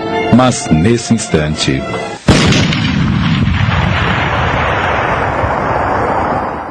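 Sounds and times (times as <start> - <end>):
speech: 0.4 - 2.6
burning depot exploding: 2.3 - 6.6
roar and rumble of debris and fire: 2.3 - 6.6.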